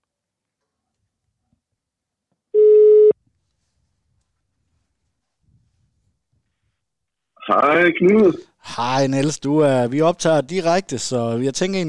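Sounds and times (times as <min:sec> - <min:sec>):
electronic telephone ringback tone during a live broadcast: 0:02.6 - 0:03.2
speech: 0:07.5 - 0:11.8.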